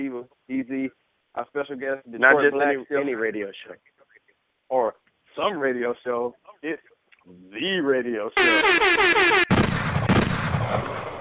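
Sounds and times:
speech: 0.0 - 1.0, 1.6 - 4.0, 4.7 - 6.9, 7.5 - 9.4
blaring wavering horn: 8.4 - 9.6
single sharp gunshot sound effect: 9.0 - 11.1.

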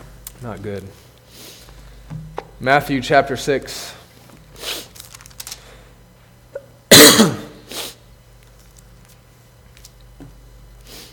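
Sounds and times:
speech: 0.4 - 1.5, 2.6 - 4.0
throat clearing of a preacher with a chest cold: 6.5 - 7.6
preacher with a chest cold coughing: 6.6 - 7.7.

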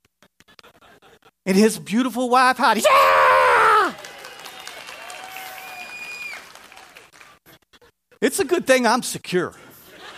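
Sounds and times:
speech: 1.5 - 3.5, 8.3 - 9.7
room full of people applauding: 3.6 - 7.4.

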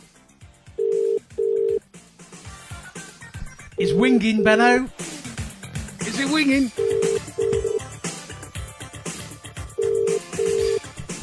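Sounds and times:
busy rhythmic music or noise: 0.0 - 11.2
electronic ringback tone of an outgoing phone call from a withheld number: 0.8 - 1.8, 3.8 - 4.8, 6.7 - 7.8, 9.8 - 10.9
speech: 3.8 - 5.0, 6.3 - 6.8.

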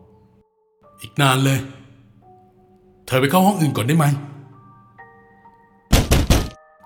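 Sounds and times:
speech: 1.1 - 1.8, 3.1 - 4.3
loud heavy knocking on a school toilet door: 5.9 - 6.6.

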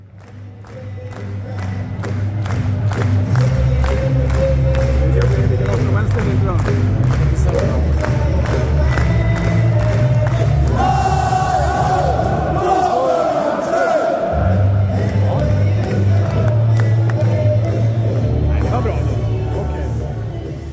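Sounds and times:
football stadium crowd shouting and cheering: 0.3 - 20.7
football stadium crowd roaring and chanting: 10.3 - 16.7.

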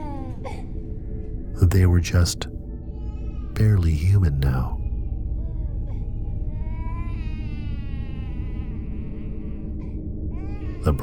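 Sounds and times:
steady low rumble: 0.0 - 10.8
speech: 1.6 - 2.6, 3.6 - 4.8, 10.8 - 11.0
infants crying softly: 2.8 - 11.0.

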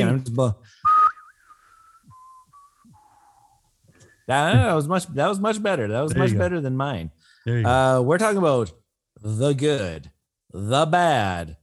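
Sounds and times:
speech: 0.4 - 0.8, 4.3 - 11.6
person whistling: 0.8 - 3.6.

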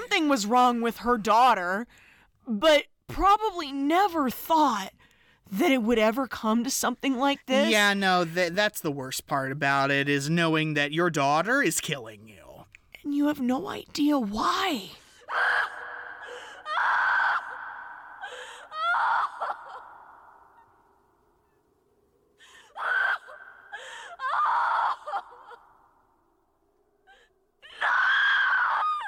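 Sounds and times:
speech: 0.3 - 12.4, 13.0 - 15.7
woman screaming: 14.6 - 20.6, 22.7 - 25.8, 27.1 - 29.0.

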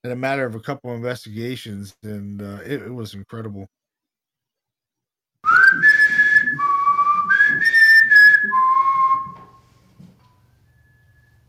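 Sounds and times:
speech: 0.0 - 3.8
whistled tune recorded during a paranormal investigation at a house: 5.4 - 11.4.

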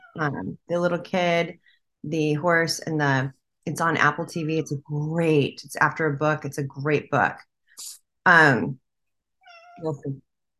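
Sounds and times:
speech: 0.2 - 8.8, 9.8 - 10.5
domestic cat meowing: 9.4 - 10.0.

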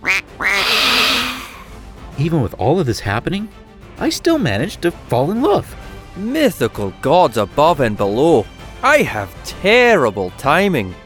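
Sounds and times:
agitated duck quacking harshly: 0.0 - 1.7
speech: 2.2 - 11.0.

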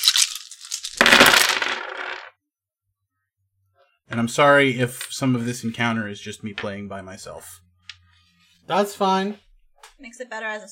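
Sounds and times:
handful of dice rolled in a tabletop game: 0.0 - 2.3
speech: 4.1 - 7.6, 8.7 - 9.4, 10.0 - 10.6.

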